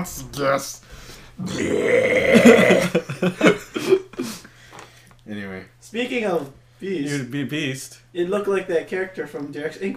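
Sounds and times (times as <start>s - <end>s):
speech: 0.0s - 4.0s, 5.3s - 9.9s
long deep rumbling burp: 1.4s - 3.0s
laughter: 2.3s - 4.5s.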